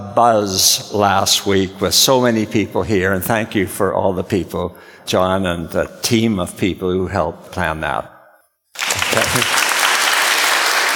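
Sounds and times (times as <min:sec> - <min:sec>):
speech: 0:00.2 - 0:08.1, 0:09.2 - 0:09.6
church congregation applauding during a Sunday service: 0:08.8 - 0:10.9.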